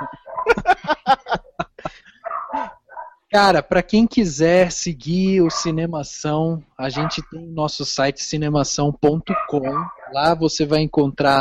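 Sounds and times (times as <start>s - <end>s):
dog barking: 0.0s - 0.6s, 2.2s - 3.2s, 5.4s - 5.8s, 6.9s - 7.4s, 9.3s - 10.3s
laughter: 0.0s - 2.7s
speech: 3.3s - 11.3s.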